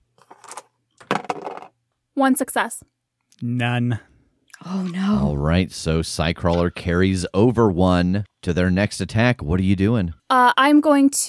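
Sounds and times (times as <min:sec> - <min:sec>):
dice clattering across a hard tabletop during a tabletop role-playing game: 0:00.3 - 0:01.8
speech: 0:02.2 - 0:11.2.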